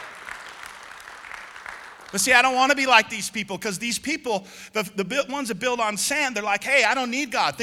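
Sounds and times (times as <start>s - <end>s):
audience applause: 0.0s - 2.3s
speech: 2.1s - 7.6s.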